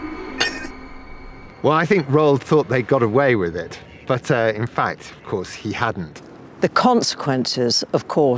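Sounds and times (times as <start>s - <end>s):
heavy glass jar lid clinking: 0.4s - 0.7s
speech: 1.7s - 8.3s.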